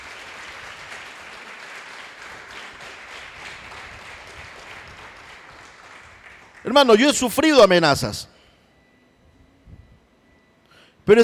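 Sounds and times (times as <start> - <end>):
large crowd applauding: 0.0 - 7.2
speech: 6.6 - 8.3, 11.1 - 11.2.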